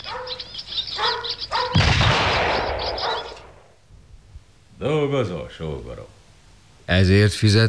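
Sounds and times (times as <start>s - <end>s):
birds chirping and twittering: 0.0s - 6.4s
loud gunshot with rolling echo: 1.7s - 3.8s
speech: 4.8s - 6.2s, 6.9s - 7.6s.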